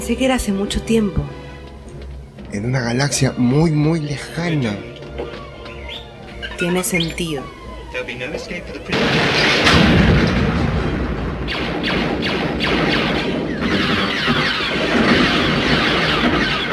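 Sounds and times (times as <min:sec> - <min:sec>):
speech: 0:00.0 - 0:01.4, 0:02.5 - 0:05.5, 0:06.6 - 0:10.0, 0:11.5 - 0:13.3
constant loud roar in a film action soundtrack: 0:03.7 - 0:16.7
gunshots in a film action soundtrack: 0:08.8 - 0:16.7.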